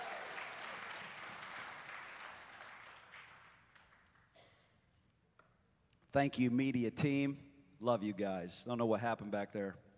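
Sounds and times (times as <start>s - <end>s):
audience applause: 0.0s - 4.2s
speech: 6.1s - 9.8s.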